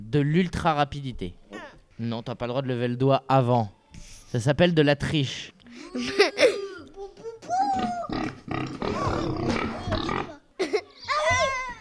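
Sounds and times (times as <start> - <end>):
speech: 0.1 - 1.4, 2.0 - 6.2
laughter: 5.7 - 8.2, 8.8 - 11.7
pig grunting and snorting: 7.8 - 10.4.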